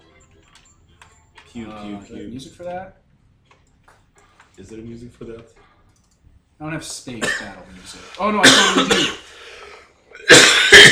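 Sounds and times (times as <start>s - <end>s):
speech: 1.5s - 3.0s, 4.6s - 5.7s, 6.6s - 9.4s
harsh rough coughs: 7.2s - 10.8s
faint breath: 9.2s - 10.0s.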